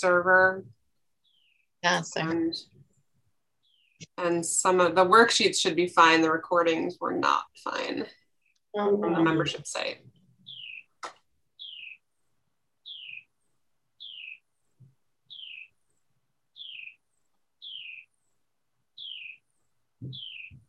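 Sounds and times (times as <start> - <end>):
speech: 0.0 - 0.8, 1.8 - 2.8, 4.0 - 10.2, 20.0 - 20.2
bird chirping in a tree: 1.2 - 2.8, 3.6 - 4.2, 9.2 - 12.1, 12.8 - 20.6.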